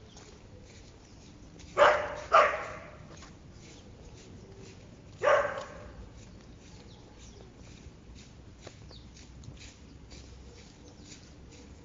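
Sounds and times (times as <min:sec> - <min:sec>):
dog barking at birds: 0:01.8 - 0:03.0, 0:05.2 - 0:06.0.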